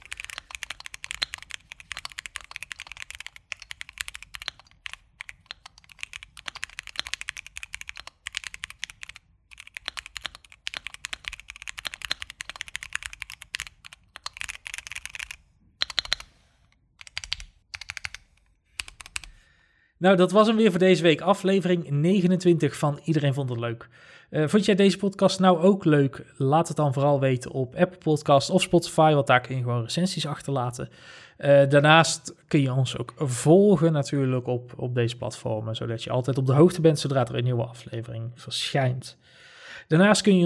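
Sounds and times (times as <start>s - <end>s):
rapid typing on an entry-level mechanical keyboard: 0.0s - 16.4s, 17.0s - 19.4s
speech: 20.0s - 40.4s.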